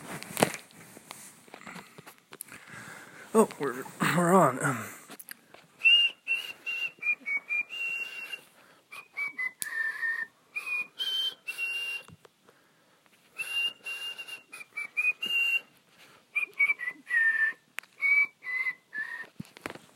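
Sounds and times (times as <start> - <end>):
speech: 3.3 - 5.0
person with a sore throat whistling a wavering melody: 5.8 - 12.2, 13.4 - 15.7, 16.3 - 19.4.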